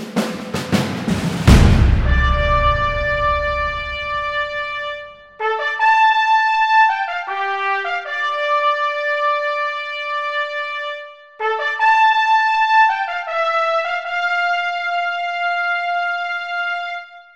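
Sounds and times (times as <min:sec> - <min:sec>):
fanfare in three variations: 0:00.4 - 0:17.1.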